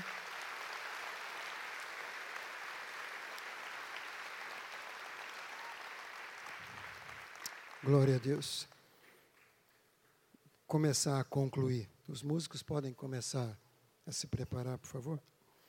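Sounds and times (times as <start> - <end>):
audience applauding: 0.0 - 8.8
speech: 7.8 - 8.7, 10.7 - 15.4.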